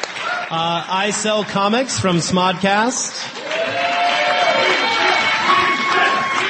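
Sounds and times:
speech: 0:00.5 - 0:03.9
small group of people cheering and whooping: 0:03.4 - 0:06.4
people shouting: 0:03.5 - 0:06.4.

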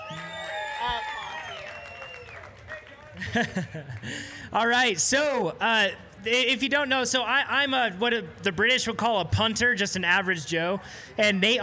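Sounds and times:
crowd cheering and whooping: 0:00.0 - 0:04.0
audience applause: 0:00.0 - 0:05.4
laughter: 0:02.4 - 0:11.6
speech: 0:03.2 - 0:11.6.

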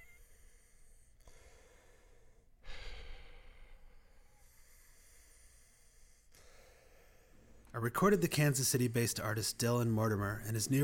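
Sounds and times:
dying man breathing laboredly in his studio: 0:00.0 - 0:07.7
speech: 0:07.8 - 0:10.8.

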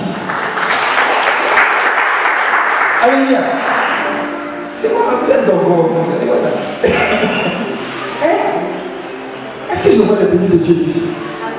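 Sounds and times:
congregation clapping during a church service: 0:00.0 - 0:04.5
speech: 0:03.0 - 0:03.8, 0:04.8 - 0:08.5, 0:09.8 - 0:11.3
laughter: 0:06.8 - 0:08.0.

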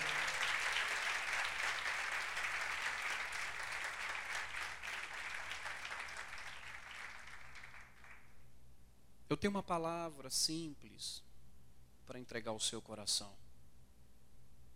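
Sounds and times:
audience applauding: 0:00.0 - 0:08.3
speech: 0:09.3 - 0:11.3, 0:12.1 - 0:13.4.

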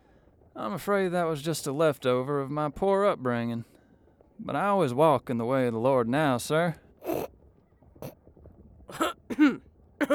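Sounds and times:
speech: 0:00.6 - 0:03.7, 0:04.4 - 0:07.3
throat-clearing coughs: 0:07.0 - 0:07.3, 0:08.9 - 0:10.1.

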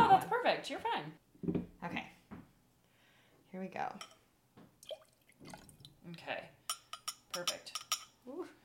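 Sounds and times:
speech: 0:00.5 - 0:02.1, 0:03.6 - 0:04.2, 0:05.4 - 0:06.6, 0:07.4 - 0:08.6
Italian sweet vermouth di Torino pouring into a mixing pitcher: 0:04.8 - 0:06.0.

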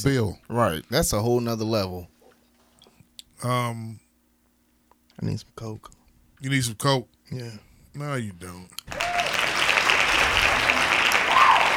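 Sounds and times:
speech: 0:00.0 - 0:02.1, 0:03.4 - 0:04.0, 0:05.2 - 0:09.0
steady hand clapping: 0:08.8 - 0:11.7.

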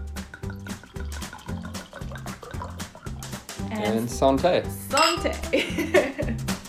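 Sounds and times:
wine being poured into a glass: 0:00.0 - 0:04.2
speech: 0:03.8 - 0:06.5
laughter: 0:05.4 - 0:06.4.

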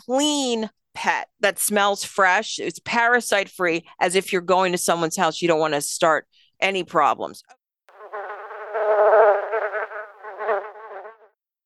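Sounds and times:
speech: 0:00.0 - 0:07.6
bees buzzing with a droning hum: 0:07.9 - 0:11.3.

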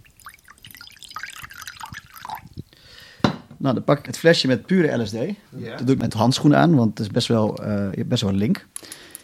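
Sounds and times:
vodka poured into a small container: 0:00.0 - 0:02.8
speech: 0:03.6 - 0:08.7.

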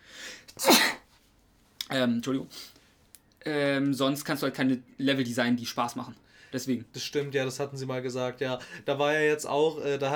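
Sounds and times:
person sneezing: 0:00.5 - 0:01.1
speech: 0:01.9 - 0:02.8, 0:03.4 - 0:10.1.

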